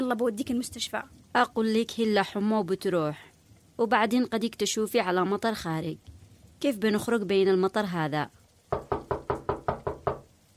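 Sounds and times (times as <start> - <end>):
speech: 0.1 - 8.8
knocking on a door: 8.7 - 10.3.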